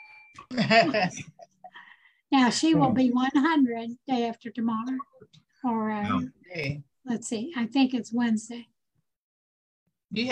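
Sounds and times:
bell ringing: 0:00.0 - 0:00.5
speech: 0:00.4 - 0:01.3, 0:02.3 - 0:08.7, 0:10.1 - 0:10.3
laughter: 0:00.5 - 0:01.5.

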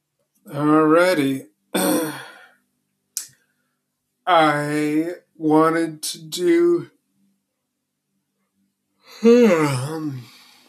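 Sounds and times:
speech: 0:00.4 - 0:01.5, 0:04.3 - 0:06.9, 0:09.2 - 0:10.2
person yawning: 0:01.8 - 0:02.5, 0:09.1 - 0:10.4.

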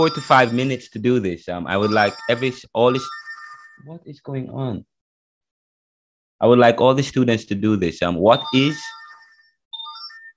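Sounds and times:
mobile phone ringtone playing a short electronic melody: 0:00.0 - 0:00.8, 0:01.7 - 0:04.0, 0:08.3 - 0:10.3
speech: 0:00.0 - 0:03.2, 0:03.8 - 0:04.9, 0:06.4 - 0:09.0.

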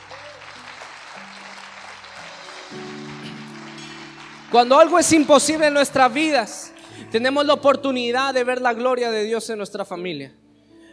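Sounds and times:
scattered cheering voices: 0:00.0 - 0:07.6
audience clapping: 0:00.0 - 0:07.9
sustained low keyboard chords: 0:00.0 - 0:09.0
speech: 0:04.5 - 0:10.4.

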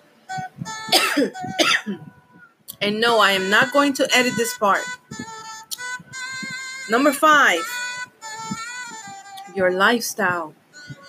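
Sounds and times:
person coughing from a morning throat tickle: 0:00.9 - 0:02.0
speech: 0:01.2 - 0:02.2, 0:02.8 - 0:05.0, 0:06.9 - 0:07.8, 0:09.6 - 0:10.6.

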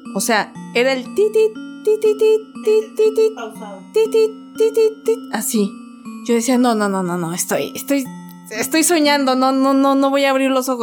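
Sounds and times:
speech: 0:00.1 - 0:10.8
voice imitating Morse code tapping with clipped syllables: 0:01.1 - 0:05.4.

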